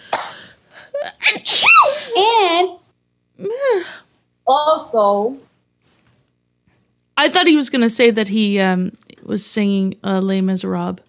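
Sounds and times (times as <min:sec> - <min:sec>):
sneeze: 0:01.3 - 0:02.0
speech: 0:01.3 - 0:02.8, 0:04.9 - 0:05.5, 0:07.2 - 0:11.0.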